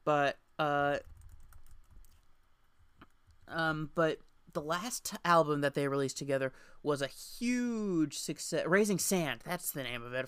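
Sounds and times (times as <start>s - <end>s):
speech: 0.0s - 1.1s, 3.5s - 10.2s
typing on a computer keyboard: 1.0s - 2.2s.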